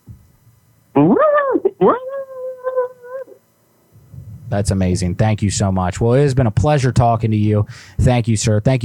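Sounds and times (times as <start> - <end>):
person growling imitating an animal for an ad: 1.0 - 3.4
speech: 1.8 - 2.0, 4.5 - 8.8.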